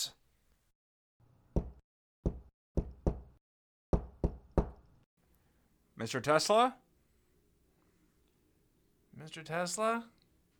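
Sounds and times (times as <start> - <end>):
firm knocks on a wooden door: 1.6 - 4.9
speech: 6.0 - 6.8, 9.2 - 10.2.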